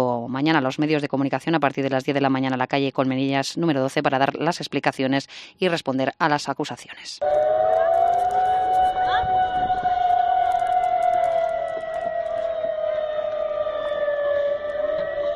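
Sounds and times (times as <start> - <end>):
speech: 0.3 - 7.4
emergency sirens wailing during a disaster drill: 7.2 - 15.3.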